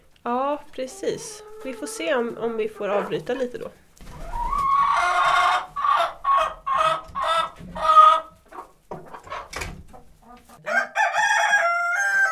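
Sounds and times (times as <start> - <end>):
hens clucking: 0.0 - 12.3
speech: 0.2 - 3.8
rooster crowing and clucking: 10.6 - 12.3.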